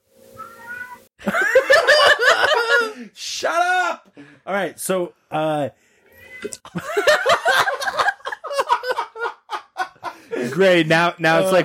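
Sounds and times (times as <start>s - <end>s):
cat meowing outside the window: 0.4s - 1.1s, 6.1s - 6.6s
laughter: 1.2s - 3.0s, 6.7s - 10.7s
speech: 3.1s - 5.8s, 6.4s - 8.1s, 10.4s - 11.6s.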